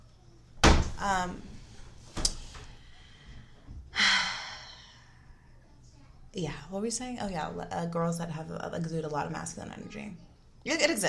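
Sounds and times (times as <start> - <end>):
door shutting thud: 0.6 - 1.0
speech: 1.0 - 1.5, 6.3 - 11.0.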